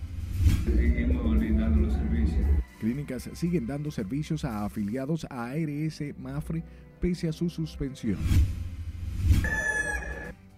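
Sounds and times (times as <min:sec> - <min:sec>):
steady low rumble: 0:00.0 - 0:02.6
speech: 0:02.3 - 0:08.6
rooster crowing: 0:09.4 - 0:10.3.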